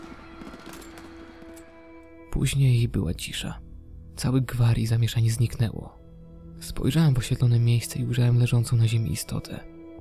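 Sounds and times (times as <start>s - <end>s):
volley of gunfire: 0.0s - 2.1s
speech: 2.3s - 3.6s, 4.2s - 6.0s, 6.6s - 9.7s.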